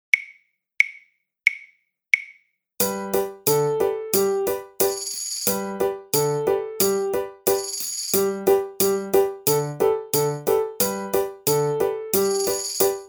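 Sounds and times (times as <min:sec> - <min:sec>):
nursery tune backing track: 0:02.8 - 0:13.0.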